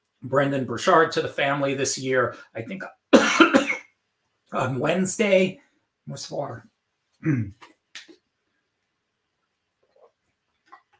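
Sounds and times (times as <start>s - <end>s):
speech: 0.2s - 3.6s, 4.5s - 7.7s
person coughing: 3.2s - 3.9s, 7.2s - 7.6s.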